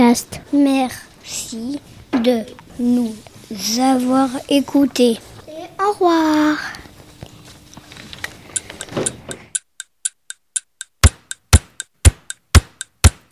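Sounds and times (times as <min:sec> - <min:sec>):
speech: 0:00.0 - 0:06.8
clock ticking: 0:08.5 - 0:13.2.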